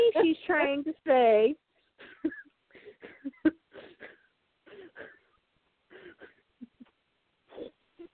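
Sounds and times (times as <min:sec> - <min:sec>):
speech: 0:00.2 - 0:01.6
raspy gasping wheezes: 0:01.8 - 0:06.6.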